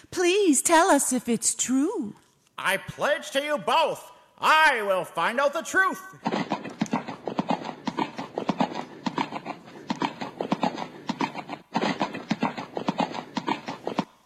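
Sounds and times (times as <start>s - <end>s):
speech: 0.0s - 6.4s
horse hooves clip-clopping while riding: 6.2s - 14.1s.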